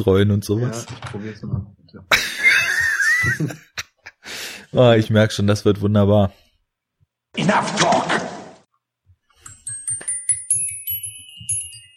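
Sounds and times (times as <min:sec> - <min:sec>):
speech: 0:00.0 - 0:01.8, 0:03.2 - 0:03.7, 0:04.7 - 0:06.4, 0:07.4 - 0:08.2
laughter: 0:02.1 - 0:04.2
small out-of-tune bells tinkling: 0:09.4 - 0:11.9.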